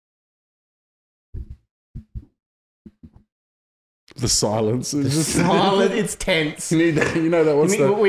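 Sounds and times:
deep heartbeat double thumps in lub-dub rhythm: 0:01.4 - 0:02.3, 0:02.9 - 0:03.2
speech: 0:04.2 - 0:08.0
laughter: 0:05.0 - 0:08.0.

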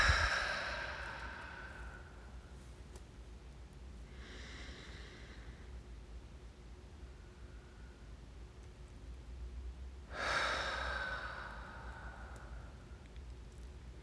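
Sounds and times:
slow deep breath in through the nose and exhale: 0:00.0 - 0:02.4, 0:04.1 - 0:05.8, 0:10.1 - 0:13.0
faint hiss: 0:00.0 - 0:14.0.

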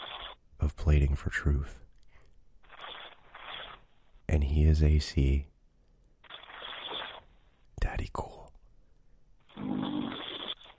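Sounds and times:
speech: 0:00.7 - 0:01.8, 0:04.3 - 0:05.5
loud rasping snore with rattling drone: 0:09.6 - 0:10.6.

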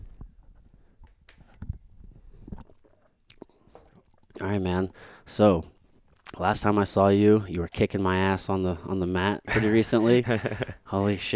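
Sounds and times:
soft gulping swallows: 0:00.6 - 0:04.4
wet mouth clicks: 0:01.3 - 0:04.4
person sipping water: 0:01.4 - 0:04.4
speech: 0:04.4 - 0:05.8, 0:06.4 - 0:11.3
laughter: 0:09.5 - 0:11.3.

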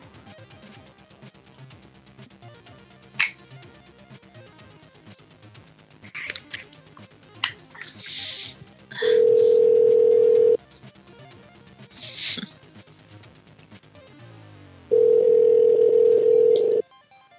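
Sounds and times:
telephone dial tone on a call that fails to dial: 0:09.0 - 0:10.6, 0:14.9 - 0:16.8.

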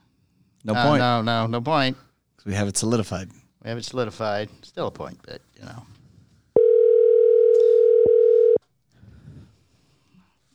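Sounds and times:
speech: 0:00.6 - 0:06.0
telephone ringing tone on an outgoing call: 0:06.6 - 0:08.6.

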